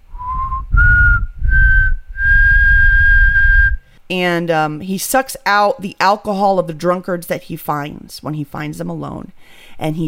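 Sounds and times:
person whistling a slow eerie tune: 0:00.1 - 0:03.8
speech: 0:04.1 - 0:10.0
faint breathy noise: 0:09.4 - 0:09.8.

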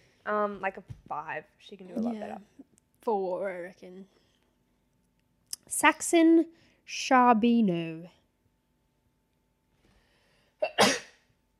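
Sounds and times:
speech: 0:00.2 - 0:04.2, 0:05.7 - 0:08.2
person sneezing: 0:10.6 - 0:11.2.

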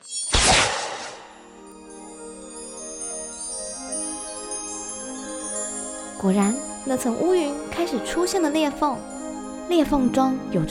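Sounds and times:
bright ringing tonal shimmer: 0:00.0 - 0:00.5, 0:01.2 - 0:10.2
bow-shot arrow whooshing: 0:00.3 - 0:01.4
speech: 0:06.2 - 0:09.1, 0:09.7 - 0:10.6.

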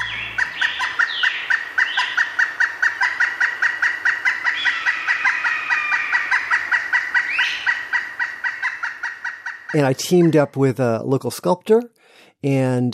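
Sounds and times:
dense flock of local birds cackling and clucking: 0:00.0 - 0:10.6
speech: 0:09.7 - 0:12.9.

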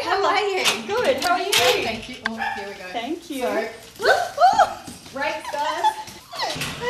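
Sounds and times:
speech: 0:00.1 - 0:04.3
small Brussels Griffon dog whimpering and yipping in a suburban house in Adelaide: 0:05.4 - 0:06.7.

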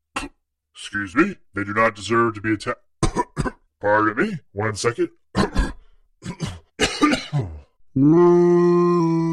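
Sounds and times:
speech: 0:00.2 - 0:02.9, 0:03.8 - 0:05.6, 0:08.0 - 0:09.2
huge creature hacking and coughing: 0:03.0 - 0:03.7, 0:05.4 - 0:07.7.

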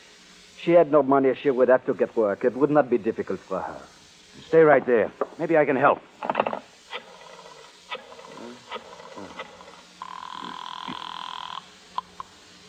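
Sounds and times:
speech: 0:00.6 - 0:06.5
telephone ringing with a buzzing burst: 0:07.0 - 0:11.7.

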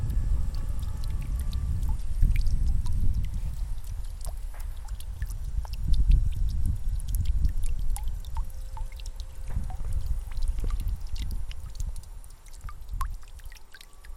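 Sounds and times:
faint hum: 0:00.0 - 0:14.1
water dripping from a leaky pipe into a basin at a cemetery: 0:00.0 - 0:14.1.

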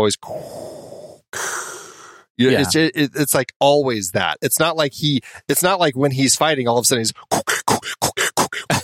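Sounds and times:
speech: 0:00.0 - 0:00.6, 0:02.4 - 0:08.8
person imitating mechanical respirator breathing: 0:00.2 - 0:02.8, 0:07.2 - 0:08.8.

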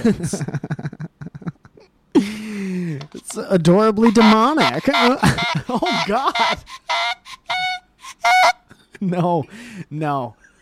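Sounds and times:
speech: 0:00.0 - 0:01.0, 0:03.4 - 0:07.1, 0:09.0 - 0:10.4
laughter: 0:00.0 - 0:02.4, 0:04.1 - 0:06.7
dying goose honking hoarsely: 0:04.0 - 0:08.6.

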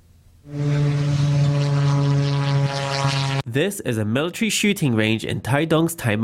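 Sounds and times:
small propeller engine of a military drone buzzing: 0:00.5 - 0:03.5
speech: 0:03.6 - 0:06.2.

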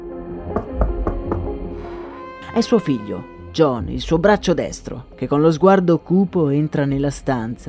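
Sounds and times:
knocking on a door: 0:00.5 - 0:01.6
speech: 0:02.6 - 0:07.6.

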